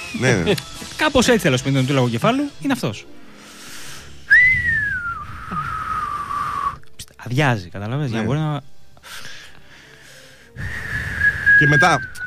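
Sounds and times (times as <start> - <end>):
speech: 0.1 - 3.2, 7.3 - 9.3, 11.6 - 12.2
whale whistling call: 4.3 - 6.8, 10.6 - 12.2.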